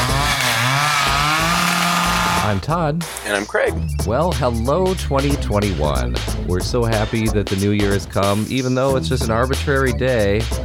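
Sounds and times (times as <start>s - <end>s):
chainsaw engine revving loudly: 0.0s - 2.6s
speech: 2.5s - 10.6s.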